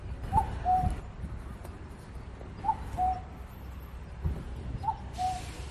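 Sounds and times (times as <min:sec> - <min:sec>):
cuckoo calling near the entrance of a broadcasting station: 0:00.3 - 0:01.0, 0:02.6 - 0:03.4, 0:04.8 - 0:05.5.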